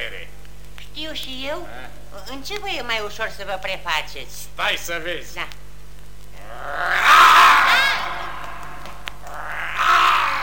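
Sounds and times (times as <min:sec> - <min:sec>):
speech: 0:01.0 - 0:05.6
lion roaring: 0:06.4 - 0:10.4.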